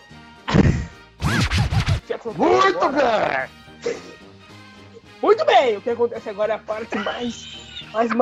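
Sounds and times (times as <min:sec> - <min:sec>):
voice imitating a cartoon dog's wheezy snicker: 0:00.5 - 0:01.8
speech: 0:02.3 - 0:03.6, 0:05.6 - 0:08.2.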